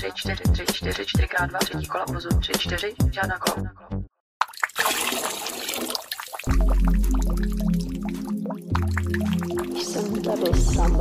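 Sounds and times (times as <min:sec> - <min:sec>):
speech: 0:00.0 - 0:04.0, 0:10.3 - 0:10.9
grains soaked in water sloshing and squishing as they are handled: 0:04.4 - 0:10.9.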